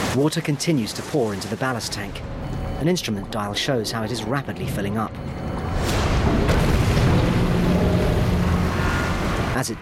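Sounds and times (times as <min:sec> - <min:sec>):
speech: 0:00.2 - 0:05.5, 0:09.6 - 0:09.7
small explosions in a ship's engine room: 0:05.5 - 0:09.5.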